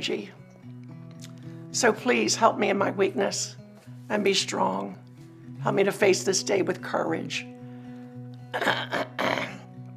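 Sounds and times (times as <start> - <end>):
speech: 0.0 - 0.4, 1.8 - 5.0, 5.6 - 7.5, 8.5 - 9.1
rough throat clearing: 8.5 - 9.6.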